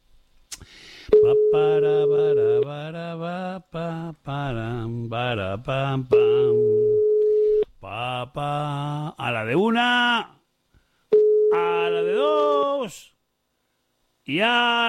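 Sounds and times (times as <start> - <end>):
melodic wavering voice: 1.2 - 2.6
speech: 1.5 - 7.1, 7.8 - 10.4, 11.5 - 13.1, 14.3 - 14.8
telephone ringback tones: 6.2 - 7.6, 11.1 - 11.6.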